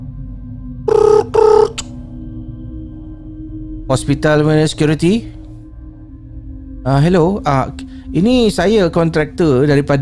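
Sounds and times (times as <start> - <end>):
electronic telephone ring tones over a handset: 0.9 - 1.8
speech: 3.9 - 5.4, 6.8 - 10.0.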